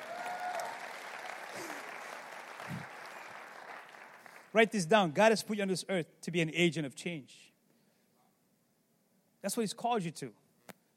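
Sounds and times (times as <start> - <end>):
crowd applauding: 0.0 - 4.9
speech: 4.5 - 7.5, 9.4 - 10.4.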